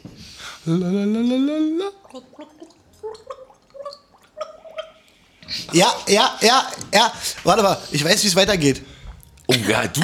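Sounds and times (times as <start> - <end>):
speech: 0.6 - 3.4, 5.5 - 8.9, 9.7 - 10.0
person gargling a simple children's tune: 0.6 - 5.0.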